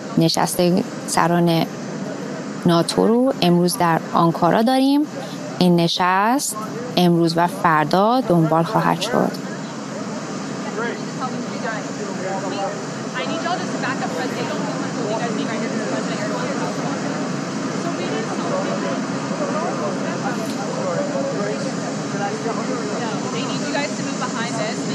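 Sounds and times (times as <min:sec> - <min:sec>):
indistinct voices talking: 0:00.0 - 0:24.9
parked jet aircraft engines idling at airport in Ankara: 0:00.0 - 0:24.9
speech: 0:00.2 - 0:01.8, 0:02.6 - 0:09.6.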